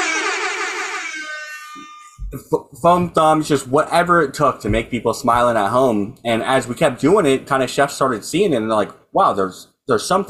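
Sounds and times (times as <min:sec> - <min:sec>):
novelty button air horn blast: 0:00.0 - 0:02.2
speech: 0:02.3 - 0:10.2.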